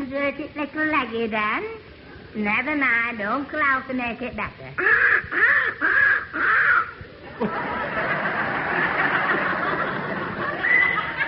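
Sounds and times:
speech: 0.1s - 6.0s
injured young crow cawing: 4.8s - 7.0s
young crow raspy squawking: 4.8s - 7.1s
laughter: 7.2s - 11.2s.

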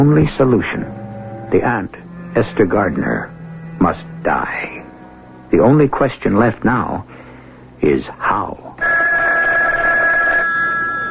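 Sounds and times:
speech: 0.0s - 4.8s, 5.5s - 7.1s, 7.8s - 8.9s
telephone ringing: 8.8s - 11.0s.

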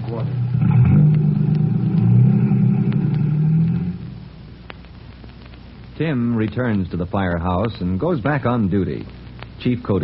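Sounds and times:
car engine rumbling and revving as it pulls away: 0.4s - 4.2s
speech: 6.0s - 10.0s.

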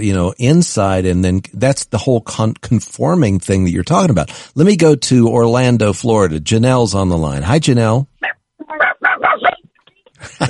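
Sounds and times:
speech: 0.0s - 8.8s, 10.2s - 10.4s
dog barking at people: 8.2s - 9.6s.

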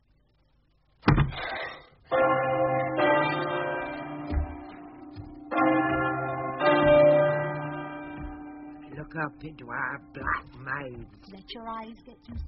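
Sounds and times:
church bells pealing: 2.1s - 11.2s
speech: 9.2s - 12.4s.

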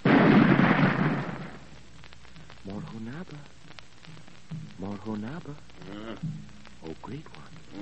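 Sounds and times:
gun fired outside a mud palace at Ouagadougou: 0.0s - 1.7s
speech: 5.2s - 6.4s.

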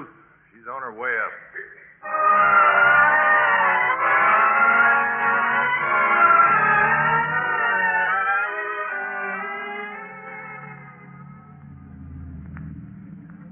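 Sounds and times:
speech: 0.7s - 2.9s
car engine droning as the vehicle drives along: 2.2s - 13.4s.

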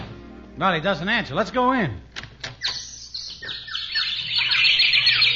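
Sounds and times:
speech: 0.6s - 2.1s
dense chorus of many birds chirping and tweeting: 2.6s - 5.3s.

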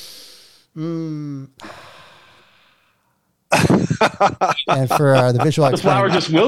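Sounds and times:
long exhale like a satisfied sigh: 0.0s - 0.7s, 1.6s - 3.0s
deep breathy inhale through the nose smelling a flower: 0.0s - 0.8s, 1.6s - 3.1s
speech: 0.8s - 1.8s, 4.0s - 6.4s
laughter: 3.5s - 6.4s.

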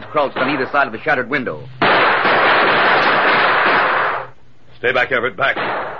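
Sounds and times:
gunfire from a gang shooting at a darkened house: 0.0s - 1.1s, 1.8s - 4.3s, 5.4s - 5.9s
speech: 0.1s - 1.8s, 4.8s - 5.9s.

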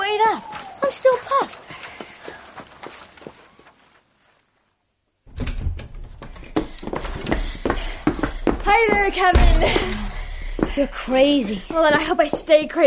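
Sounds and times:
running footsteps: 0.4s - 4.1s, 5.5s - 12.8s
speech: 8.8s - 10.1s, 10.8s - 12.8s.

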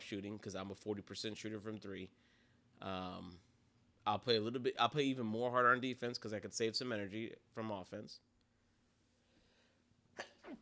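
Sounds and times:
speech: 0.1s - 8.3s
person sneezing: 10.2s - 10.6s.

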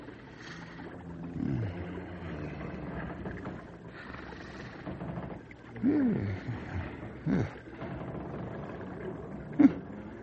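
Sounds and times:
loud snoring: 1.3s - 3.6s, 5.8s - 10.2s.

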